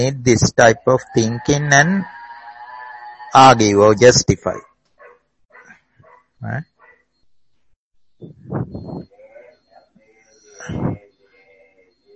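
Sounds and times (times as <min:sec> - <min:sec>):
speech: 0:00.0 - 0:02.2, 0:03.3 - 0:04.7, 0:06.4 - 0:06.7, 0:08.2 - 0:09.1, 0:10.6 - 0:11.0
dog barking: 0:04.6 - 0:07.1.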